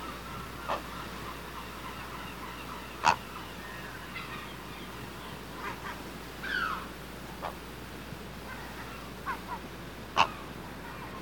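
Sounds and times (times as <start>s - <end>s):
constant low background hum: 0.0s - 11.1s
great blue heron young calling from the nest: 0.2s - 5.2s.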